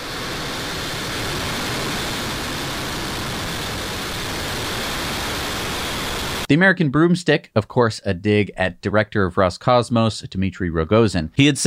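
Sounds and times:
Falcon 9 rocket engines roaring at liftoff: 0.0 - 6.5
speech: 6.5 - 11.6.

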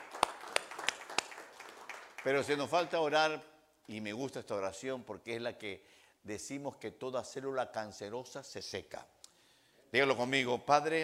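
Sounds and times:
hand claps: 0.0 - 2.8
speech: 2.2 - 9.2, 9.9 - 11.0.

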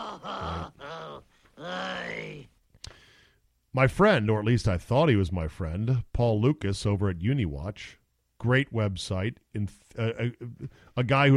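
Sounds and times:
person groaning: 0.0 - 2.5
speech: 3.7 - 11.3.

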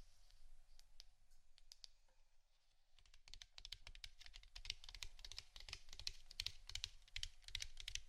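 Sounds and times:
rapid crisp tapping: 3.0 - 8.0.

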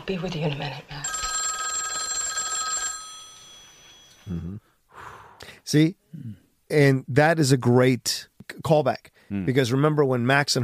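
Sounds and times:
speech: 0.0 - 1.0, 4.3 - 4.7, 5.7 - 10.6
telephone bell ringing with a metallic trill: 1.0 - 4.3.

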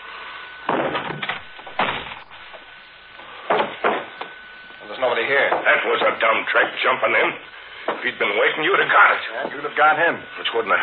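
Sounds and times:
wooden door being kicked open with heavy thuds and bangs: 0.7 - 2.6, 3.4 - 4.1
speech: 5.3 - 10.8.

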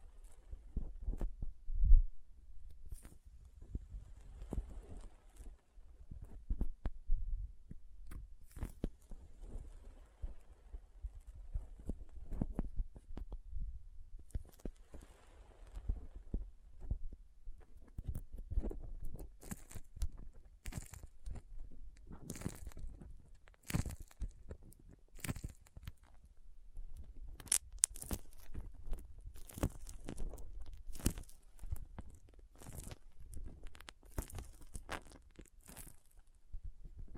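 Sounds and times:
sharp crackly pops: 0.0 - 1.5, 2.6 - 7.0, 7.6 - 13.6, 14.2 - 37.1
crinkles: 2.6 - 6.9, 7.7 - 13.4, 14.2 - 37.1
soft handling of something sticky and squishy: 27.4 - 36.2.

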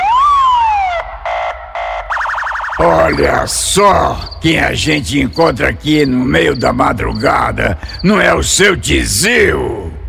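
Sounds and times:
police car siren cycling through whoop, blasts and yelp: 0.0 - 3.6
speech: 2.8 - 9.9.

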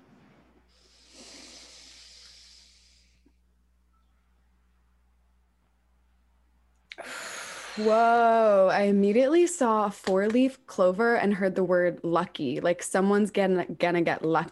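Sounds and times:
low steady hum: 0.0 - 14.4
deep breathing during a guided breathing exercise: 0.6 - 3.4, 6.9 - 7.9
speech: 7.8 - 14.4.

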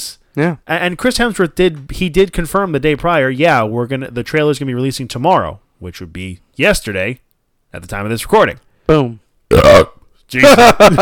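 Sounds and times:
speech: 0.0 - 10.9
short loud voiced burp: 9.5 - 10.1.

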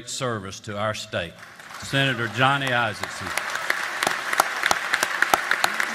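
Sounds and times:
speech: 0.0 - 3.5
large crowd giving a standing ovation in a legislative chamber: 1.4 - 5.9.

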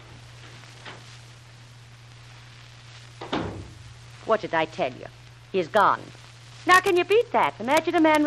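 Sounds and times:
steady low hum: 0.0 - 8.0
door opening quietly: 3.2 - 3.8
speech: 4.3 - 8.2.

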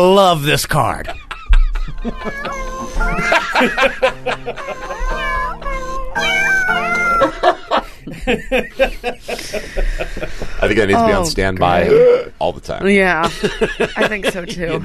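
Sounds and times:
speech: 0.0 - 1.2, 2.0 - 5.6, 8.2 - 14.8
laughter: 0.8 - 5.4, 7.2 - 11.0, 13.2 - 14.8
cat meows forming a birthday tune: 2.3 - 3.3, 4.6 - 7.4.

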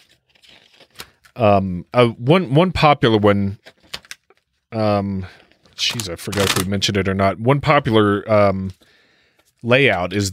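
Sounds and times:
tarot cards being flipped through: 0.0 - 1.4, 3.6 - 4.6, 5.4 - 6.8
speech: 1.4 - 3.7, 4.7 - 9.0, 9.6 - 10.3.

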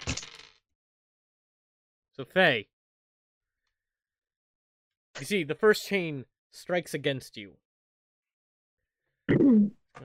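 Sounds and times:
dice clattering across a hard tabletop: 0.0 - 0.6
speech: 2.2 - 2.7, 5.2 - 7.6, 9.3 - 10.0.

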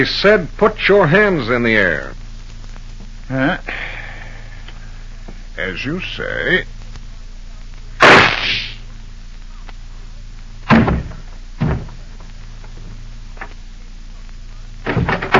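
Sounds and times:
speech: 0.0 - 2.2, 3.3 - 3.9, 5.6 - 6.8
gunshot: 8.0 - 8.8, 10.7 - 11.2
quiet knocks and thumps: 10.6 - 13.6, 14.8 - 15.3.

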